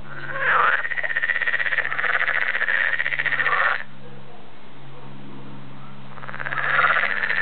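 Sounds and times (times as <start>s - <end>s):
edible frog rattling pulsed croak: 0.0s - 3.9s, 6.1s - 7.3s.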